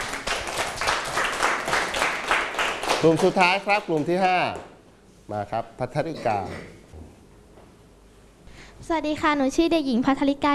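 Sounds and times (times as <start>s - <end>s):
class applauding a classmate: 0.0s - 4.7s
speech: 3.0s - 4.7s, 5.3s - 6.8s, 8.8s - 10.5s.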